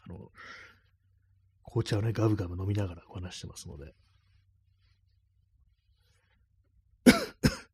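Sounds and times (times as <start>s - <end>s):
speech: 1.7s - 4.1s
throat clearing: 7.0s - 7.7s.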